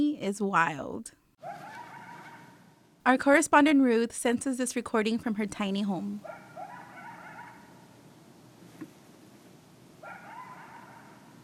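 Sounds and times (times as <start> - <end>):
speech: 0.0 - 1.7, 3.0 - 6.4
coyotes yipping and howling at night: 1.4 - 2.8, 6.2 - 7.9, 10.0 - 11.4.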